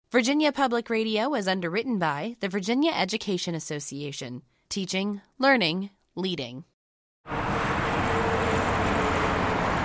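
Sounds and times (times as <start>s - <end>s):
speech: 0.1s - 7.5s
highway traffic along Interstate 81 in Salem: 7.3s - 9.8s.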